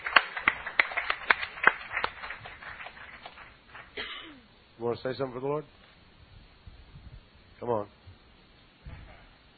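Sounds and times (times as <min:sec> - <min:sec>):
audience clapping: 0:00.0 - 0:04.1
speech: 0:04.8 - 0:05.8, 0:07.6 - 0:08.0.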